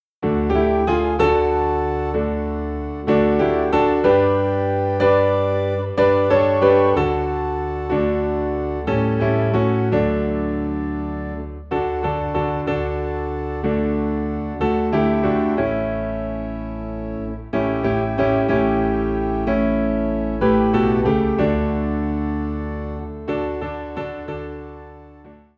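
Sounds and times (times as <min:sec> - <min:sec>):
piano in D: 0:00.0 - 0:25.5
organ in D: 0:00.2 - 0:25.2.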